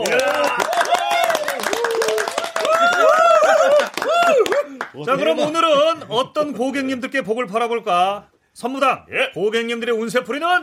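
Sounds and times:
group clapping: 0:00.0 - 0:05.6
speech: 0:05.0 - 0:10.6.

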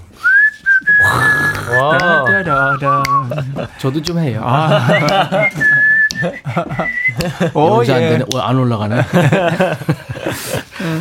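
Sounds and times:
person whistling sustained tones: 0:00.2 - 0:03.3, 0:04.9 - 0:07.3
speech: 0:01.8 - 0:10.9
people laughing: 0:03.1 - 0:03.8, 0:04.5 - 0:07.8, 0:08.8 - 0:10.9.

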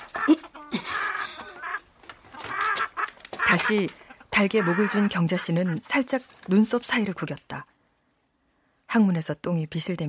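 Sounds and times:
chicken held up by its legs clucking: 0:00.0 - 0:05.8
speech: 0:00.3 - 0:00.5, 0:03.6 - 0:07.7, 0:08.9 - 0:10.0.

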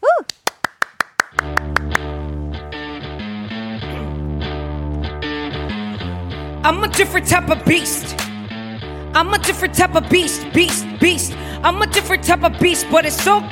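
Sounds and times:
sharp evenly spaced claps: 0:00.2 - 0:02.2
pop music with heavy bass and bright synth chords: 0:01.6 - 0:13.5
speech: 0:06.6 - 0:08.3, 0:09.2 - 0:13.5.

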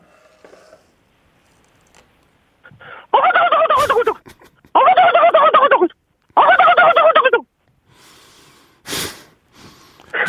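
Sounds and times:
quieter rustling: 0:00.0 - 0:02.4
turkeys gobbling in panic: 0:03.1 - 0:04.2, 0:04.8 - 0:07.4.

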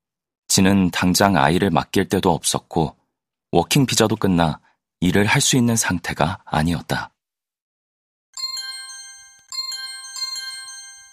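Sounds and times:
speech: 0:00.5 - 0:07.1
job-search app job alert notification chimes on a phone: 0:08.4 - 0:11.1.

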